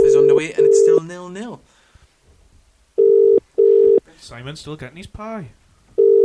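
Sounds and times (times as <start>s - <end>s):
electronic ringback tone of an outgoing phone call: 0.0s - 1.0s, 3.0s - 4.0s, 6.0s - 6.2s
speech: 0.4s - 1.8s, 4.3s - 5.6s.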